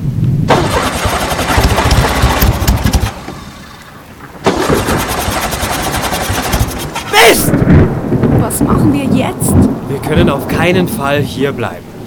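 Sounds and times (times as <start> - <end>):
car engine cranking and sputtering: 0.5 - 7.8
speech: 8.8 - 11.9.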